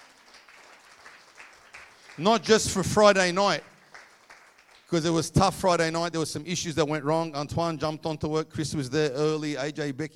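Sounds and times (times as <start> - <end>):
audience applauding for helpers: 0.0 - 4.9
speech: 2.2 - 3.7, 4.9 - 10.1.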